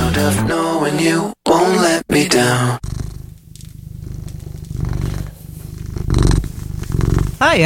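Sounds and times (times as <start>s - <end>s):
speech: 0.2s - 1.4s, 7.4s - 7.6s
cat purring: 2.8s - 7.6s.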